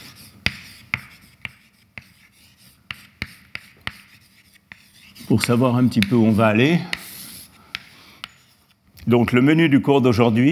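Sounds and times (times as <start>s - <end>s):
writing on a board during a lecture: 0.0s - 8.7s
speech: 5.3s - 7.0s, 9.1s - 10.5s.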